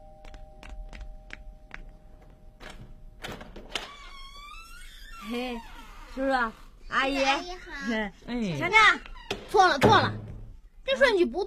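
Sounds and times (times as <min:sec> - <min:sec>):
door and latch clunks: 0:02.6 - 0:04.1
speech: 0:05.3 - 0:10.2, 0:10.9 - 0:11.4.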